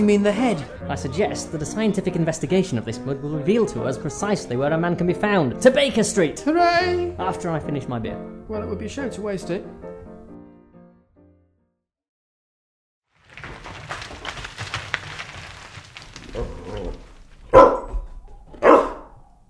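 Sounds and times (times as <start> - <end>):
speech: 0.0 - 9.9
rustling and scuffling: 13.1 - 19.4
puppy barking: 17.5 - 19.4.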